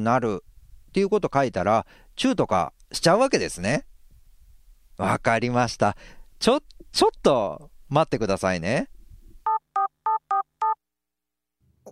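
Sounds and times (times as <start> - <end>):
speech: 0.0 - 3.9, 5.0 - 9.0
electronic telephone keypad dialing tones: 9.5 - 10.8.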